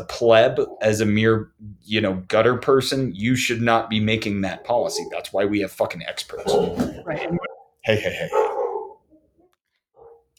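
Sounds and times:
speech: 0.0 - 8.6
dogs barking excitedly: 0.2 - 1.3, 3.8 - 10.3.

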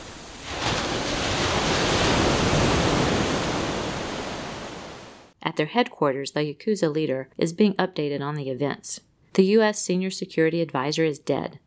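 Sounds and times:
ocean surf roaring: 0.0 - 5.3
speech: 5.4 - 11.6.

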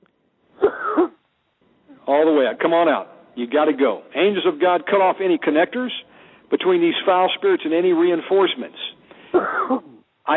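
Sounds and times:
man's deep hoarse rasping cough: 0.6 - 1.2, 9.3 - 10.0
speech: 2.1 - 10.3.

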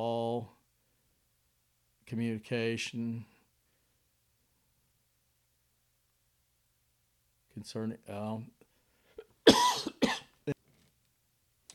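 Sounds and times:
speech: 2.1 - 3.3, 7.6 - 8.6
harsh cough: 9.2 - 10.5.

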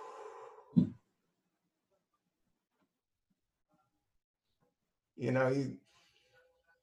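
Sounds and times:
person taking a deep breath in: 0.0 - 0.8
short voiced sigh-like exhale through the mouth: 0.0 - 0.8.

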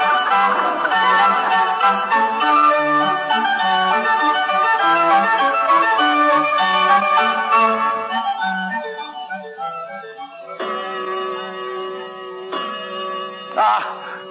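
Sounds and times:
clock chiming a short melodic tune: 0.0 - 14.2.

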